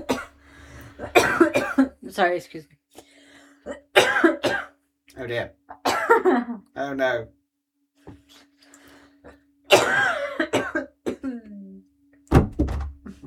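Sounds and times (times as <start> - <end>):
harsh hacking coughing fit: 0.0 - 0.4, 1.0 - 2.0, 3.7 - 4.8, 5.7 - 6.4, 9.7 - 11.5
speech: 2.1 - 2.8, 5.2 - 5.6, 6.2 - 7.4
phone dropping onto the floor with a heavy thud: 12.3 - 13.0.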